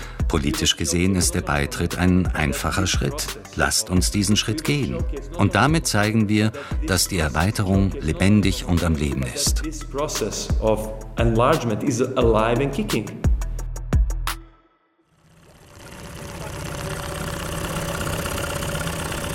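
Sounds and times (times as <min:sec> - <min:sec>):
speech: 0:00.3 - 0:13.2
boat engine idling on Lake Skadar: 0:15.2 - 0:19.3.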